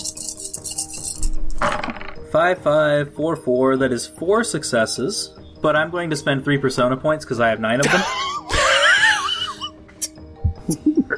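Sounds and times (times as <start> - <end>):
handful of dice rattling against a hard surface: 0.1 - 2.3
speech: 2.3 - 8.3, 10.7 - 11.0
laughter: 7.8 - 9.7.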